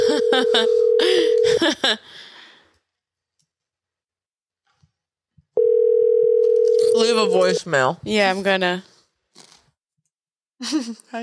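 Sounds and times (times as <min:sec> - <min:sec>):
steady electronic phone ringing tone: 0:00.0 - 0:01.6, 0:05.6 - 0:07.6
speech: 0:00.3 - 0:02.3, 0:07.0 - 0:09.5, 0:10.6 - 0:11.2.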